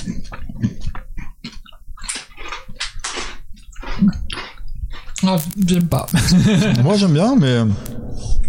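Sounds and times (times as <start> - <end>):
crunching and chewing of a crisp snack against the microphone: 0.0 - 6.3
speech: 5.2 - 7.9
laughter: 6.0 - 7.2.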